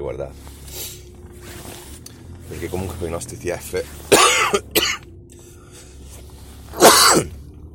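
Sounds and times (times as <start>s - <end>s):
speech: 0.0s - 0.9s, 2.5s - 4.8s
person coughing: 4.1s - 5.0s, 6.7s - 7.4s.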